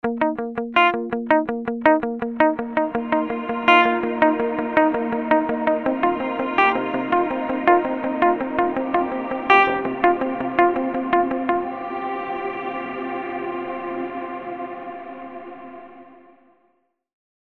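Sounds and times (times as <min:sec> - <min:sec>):
funk guitar wobble with pre delay: 0:00.0 - 0:11.7.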